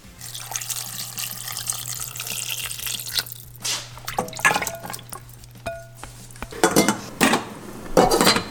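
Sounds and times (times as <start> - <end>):
water sizzling in a hot pan of sautéing marinated mushrooms: 0.0 - 6.6
metallic cookware clinking and scraping: 0.2 - 8.4.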